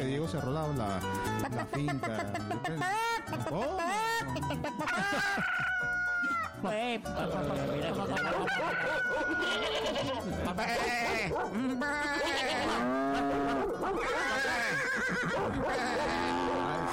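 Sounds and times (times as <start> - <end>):
speech: 0.1 - 6.0, 6.6 - 16.9
laughter: 1.4 - 16.9
busy flock of chickens clucking and squawking: 8.0 - 16.5
rooster crowing: 8.2 - 9.8.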